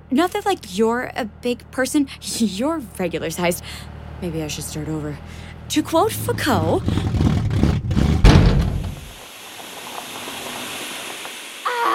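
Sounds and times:
car engine rumbling and sputtering while breaking down: 0:00.0 - 0:11.6
speech: 0:00.1 - 0:07.3
heavy clunks from a breaking-down car: 0:06.8 - 0:09.2
long hiss from a broken-down car: 0:08.8 - 0:11.9.

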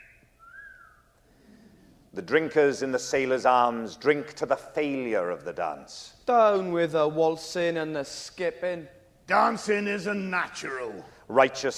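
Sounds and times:
wolf whistle from young men at lamp-lit street corners in the wind: 0:00.0 - 0:01.1
speech: 0:02.2 - 0:11.7.

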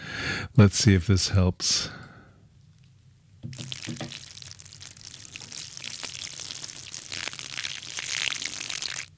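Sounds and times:
speech: 0:00.6 - 0:02.0
champagne fizzing pour with crackling bubbles: 0:03.5 - 0:09.1.

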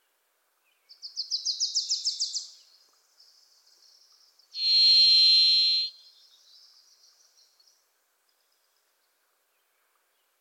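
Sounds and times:
Varied Thrush Ixoreus naevius singing buzzy whistle in Pacific Northwest forest: 0:04.6 - 0:05.9.

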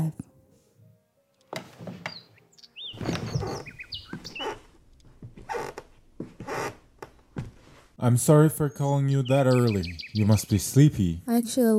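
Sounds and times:
birds chirping: 0:02.0 - 0:11.1
soft rustling: 0:02.9 - 0:08.0
speech: 0:08.0 - 0:11.7.

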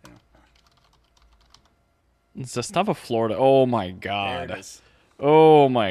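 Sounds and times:
typing on a computer keyboard: 0:00.1 - 0:01.7
speech: 0:02.4 - 0:05.8.

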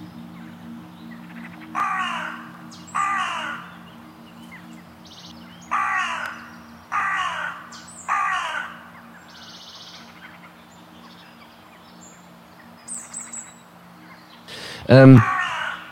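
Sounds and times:
birds chirping: 0:00.0 - 0:15.9
steady low hum: 0:00.0 - 0:15.9
hooded crow cawing: 0:01.8 - 0:03.7, 0:05.7 - 0:08.9, 0:14.5 - 0:15.9
speech: 0:14.9 - 0:15.3.

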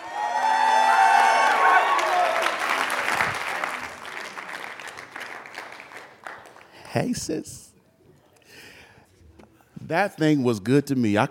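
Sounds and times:
crowd cheering with high whoops: 0:00.0 - 0:04.1
crowd applauding: 0:00.0 - 0:06.9
speech: 0:07.0 - 0:07.7, 0:09.9 - 0:11.2.

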